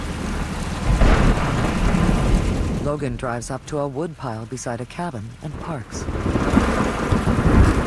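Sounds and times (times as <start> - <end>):
low rumble: 0.0 - 5.7
heavy sheeting rain: 0.0 - 7.8
speech: 2.9 - 6.6.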